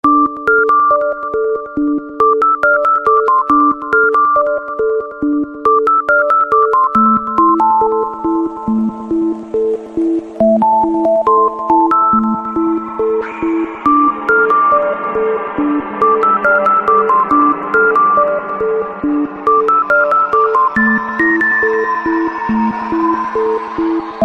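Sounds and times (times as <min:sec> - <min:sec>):
ringtone melody: 0:00.1 - 0:24.2.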